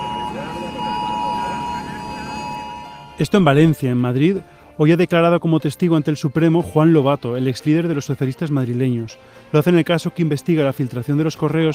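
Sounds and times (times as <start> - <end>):
crowd murmuring: 0.0 - 3.5
emergency alert tone from many mobile phones: 0.0 - 3.7
speech: 3.2 - 11.7.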